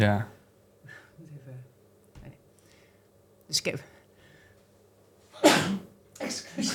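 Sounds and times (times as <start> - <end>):
speech: 0.0 - 0.3, 3.5 - 3.9
sneeze: 5.4 - 6.7.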